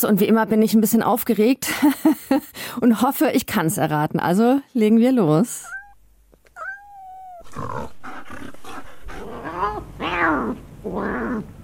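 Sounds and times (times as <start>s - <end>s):
speech: 0.0s - 5.8s, 7.6s - 8.5s
cat yowling: 5.7s - 7.9s, 9.2s - 11.5s
cat and dog snarling, growling and hissing in a fight: 6.6s - 11.6s.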